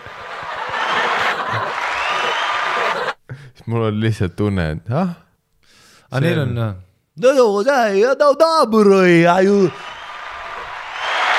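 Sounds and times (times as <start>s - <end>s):
crowd applauding: 0.0s - 3.2s, 9.7s - 11.3s
people chuckling: 0.0s - 3.2s
speech: 3.7s - 5.2s, 6.1s - 9.8s.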